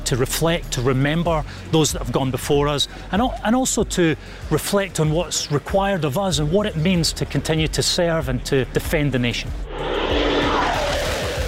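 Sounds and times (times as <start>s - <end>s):
speech: 0.1s - 10.2s
Typhoon fighter jet flying low over a military base: 9.6s - 11.4s.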